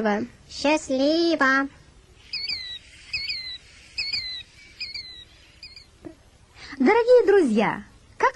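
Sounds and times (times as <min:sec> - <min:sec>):
speech: 0:00.0 - 0:01.8, 0:06.8 - 0:08.3
killdeer calling: 0:02.1 - 0:06.0.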